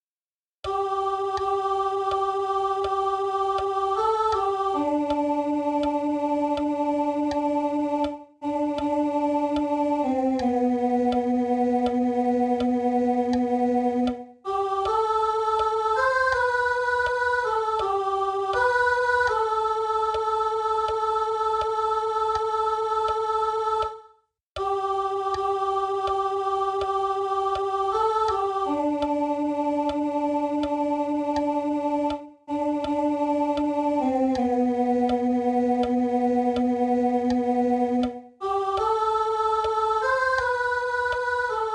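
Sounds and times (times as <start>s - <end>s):
soprano singing a hymn: 0.6s - 24.0s, 24.6s - 41.7s.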